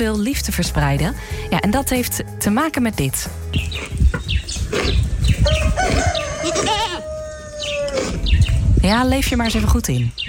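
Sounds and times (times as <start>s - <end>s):
speech: 0.0s - 6.8s, 8.8s - 10.2s
other farmyard animal noises: 3.5s - 10.2s
farm chickens clucking: 3.6s - 8.6s
rooster crowing: 5.4s - 8.2s.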